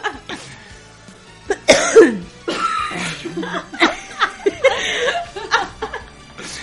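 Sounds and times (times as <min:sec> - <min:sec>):
people chuckling and laughing: 0:00.0 - 0:00.5, 0:02.7 - 0:06.6
people coughing: 0:01.5 - 0:04.0.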